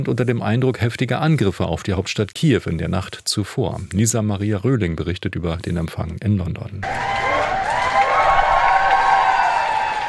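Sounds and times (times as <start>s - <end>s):
speech: 0.0s - 7.4s
crowd applause and cheering outdoors in front of 10 Downing Street in London: 6.8s - 10.0s.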